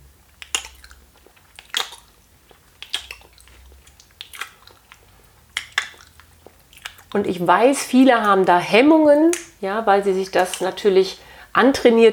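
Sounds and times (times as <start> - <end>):
enjoyable chewing with lip smacking: 0.2 - 8.6, 10.2 - 11.0
speech: 7.1 - 12.1.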